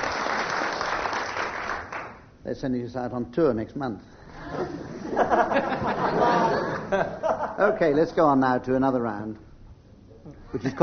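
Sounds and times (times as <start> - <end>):
audience applause: 0.0 - 2.2
speech: 2.4 - 9.5, 10.3 - 10.8
laughter: 4.3 - 7.8.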